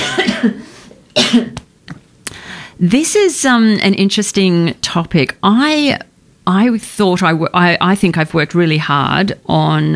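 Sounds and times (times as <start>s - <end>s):
person coughing: 0.0s - 1.6s
speech: 0.4s - 1.6s, 2.8s - 9.9s.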